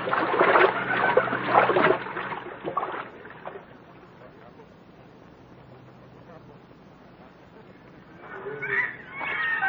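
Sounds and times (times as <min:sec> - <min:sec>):
people wading across a river splashing: 0:00.0 - 0:03.8
quiet watery hush: 0:00.0 - 0:09.6.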